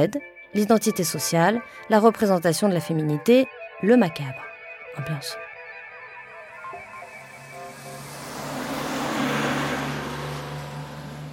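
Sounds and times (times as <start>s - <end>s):
speech: 0.0s - 5.4s
city bus engine accelerating as it pulls away: 6.6s - 11.3s.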